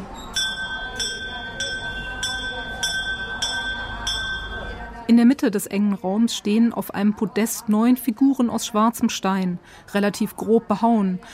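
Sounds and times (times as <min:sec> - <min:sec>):
low rumble and murmur: 0:00.0 - 0:11.3
small bell at a Hindu shrine being struck: 0:00.2 - 0:04.8
speech: 0:05.1 - 0:11.3.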